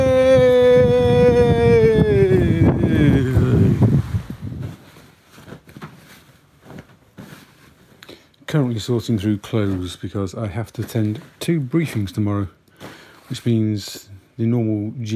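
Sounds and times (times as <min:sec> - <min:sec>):
loud wind buffeting a microphone on a windy day: 0:00.0 - 0:04.8
faint rustling: 0:03.2 - 0:14.3
speech: 0:08.5 - 0:15.1.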